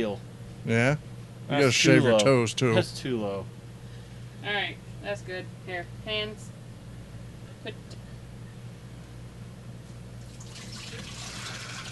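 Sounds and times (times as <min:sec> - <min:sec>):
speech: 0:00.0 - 0:03.6, 0:04.4 - 0:06.5, 0:07.6 - 0:07.9
hands rinsed under clean running water: 0:10.3 - 0:11.9.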